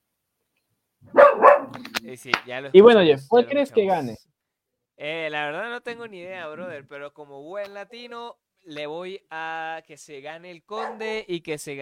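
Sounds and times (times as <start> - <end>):
dog barking harshly: 1.1 - 1.8, 10.8 - 11.1
speech: 2.0 - 4.3, 5.0 - 11.8.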